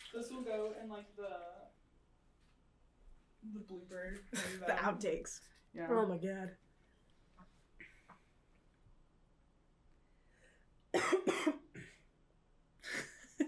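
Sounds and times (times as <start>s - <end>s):
speech: 0.1s - 1.8s, 3.4s - 6.6s, 10.9s - 11.3s
coughing fit with loud harsh hacking coughs: 4.3s - 4.8s, 10.9s - 12.0s
laughter: 4.3s - 5.0s.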